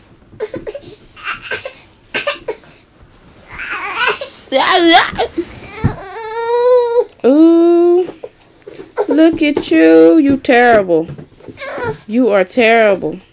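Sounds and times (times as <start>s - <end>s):
baby fussing and crying: 0.4s - 2.6s, 3.5s - 4.5s, 5.2s - 7.2s, 11.6s - 12.1s
speech: 4.5s - 5.3s, 9.2s - 11.2s, 12.1s - 13.3s.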